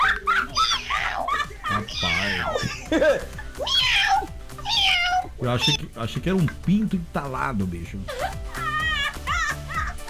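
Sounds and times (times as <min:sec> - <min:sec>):
man imitating a hoarse cat meowing: 0:00.0 - 0:05.9, 0:08.2 - 0:10.0
laughter: 0:00.0 - 0:10.0
speech: 0:01.9 - 0:04.2, 0:05.4 - 0:08.4.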